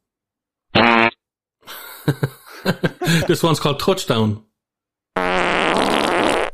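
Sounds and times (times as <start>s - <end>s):
loud buzzy fart sound effect: 0.7s - 1.2s, 5.2s - 6.5s
laughter: 1.7s - 3.6s
speech: 2.1s - 4.5s.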